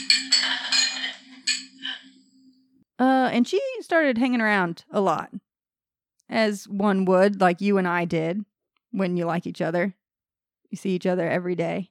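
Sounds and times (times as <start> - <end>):
glasses clinking together in a toast: 0.0 - 2.0
speech: 3.0 - 5.5, 6.3 - 10.0, 10.7 - 11.8.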